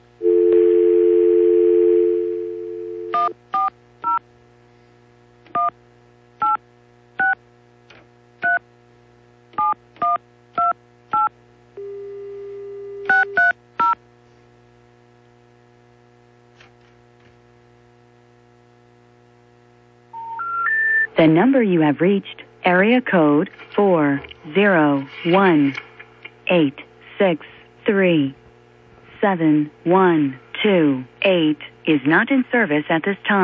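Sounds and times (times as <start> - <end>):
faint hum: 0.0 - 33.4
telephone dial tone: 0.2 - 3.3, 11.2 - 14.0, 20.1 - 21.1
speech: 21.2 - 25.8, 26.5 - 28.4, 29.2 - 33.4.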